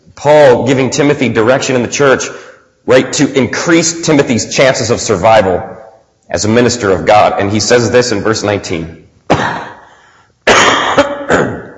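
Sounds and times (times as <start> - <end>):
speech: 0.2 - 9.6
person coughing: 9.3 - 11.7.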